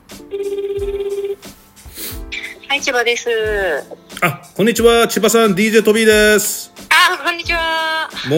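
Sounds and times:
phone ringback tone on an outgoing call to a company: 0:00.2 - 0:01.4
speech: 0:02.8 - 0:08.3.

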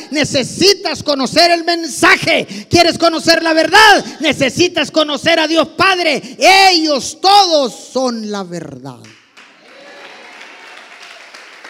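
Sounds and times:
speech: 0:00.1 - 0:09.2
audience applause: 0:09.4 - 0:11.6.

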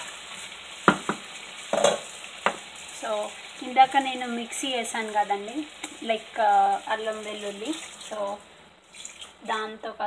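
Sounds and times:
masala sizzling in a hot pan: 0:00.0 - 0:10.0
sharp utensil knocks: 0:00.8 - 0:02.6
speech: 0:03.0 - 0:08.5, 0:09.4 - 0:10.0.

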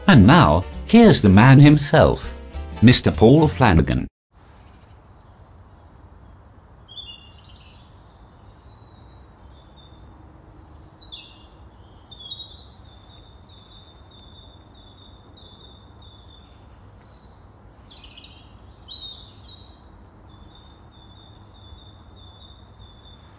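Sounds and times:
speech: 0:00.1 - 0:04.1
birds chirping and singing in the street: 0:04.6 - 0:23.3.

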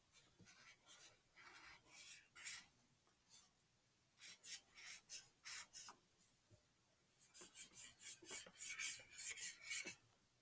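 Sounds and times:
marker strokes squeaking and rasping across paper: 0:00.1 - 0:02.7, 0:04.2 - 0:06.0, 0:07.2 - 0:10.0.

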